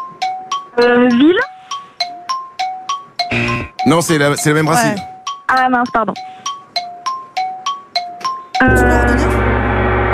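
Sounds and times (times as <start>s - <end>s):
two-pitch countdown chimes of a game: 0.0s - 2.4s, 3.2s - 10.1s
speech: 0.8s - 1.5s, 3.9s - 6.3s, 8.6s - 9.3s
game gong crashing to signal time is up: 8.6s - 10.1s.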